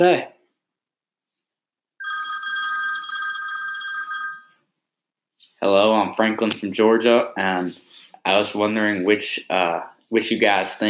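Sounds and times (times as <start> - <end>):
speech: 0.0 - 0.3, 5.6 - 10.8
telephone ringing for an incoming call: 2.0 - 4.7.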